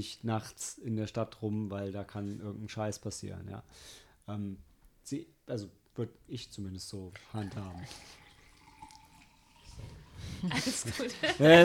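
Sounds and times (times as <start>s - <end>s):
speech: 0.0s - 8.2s, 9.8s - 11.6s
water pouring into a glass: 7.1s - 11.2s
laughter: 10.4s - 11.6s.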